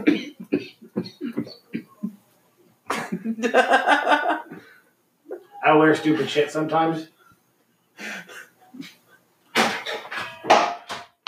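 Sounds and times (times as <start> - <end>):
laughter: 2.9 - 4.7, 5.3 - 6.6
speech: 3.4 - 4.3, 5.7 - 7.1
objects knocked off a kitchen counter clattering on hard surfaces: 9.6 - 11.2.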